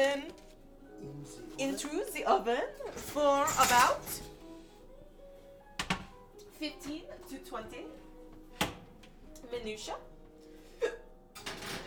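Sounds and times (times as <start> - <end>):
speech: 1.6 - 4.3, 6.6 - 8.0, 9.4 - 10.1
hiccup: 10.8 - 11.1.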